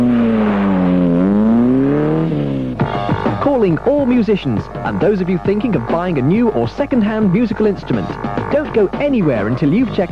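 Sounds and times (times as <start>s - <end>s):
car engine driving off: 0.0s - 4.6s
speech: 3.6s - 10.1s.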